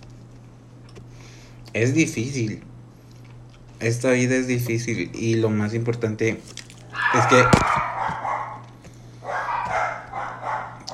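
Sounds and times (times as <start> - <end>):
speech: 1.7 - 2.7, 3.8 - 7.9
several dogs barking: 6.8 - 10.9.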